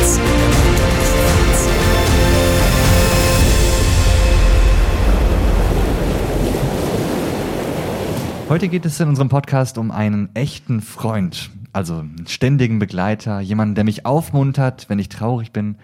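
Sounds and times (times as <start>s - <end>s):
ocean surf crashing and rushing: 0.0s - 9.0s
speech: 8.5s - 15.8s.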